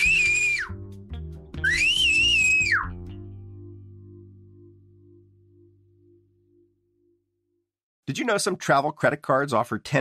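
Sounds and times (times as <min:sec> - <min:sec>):
loud piercing human whistles sliding downward: 0:00.0 - 0:00.8, 0:01.6 - 0:03.0
low steady musical bed: 0:00.0 - 0:07.2
speech: 0:08.1 - 0:09.9.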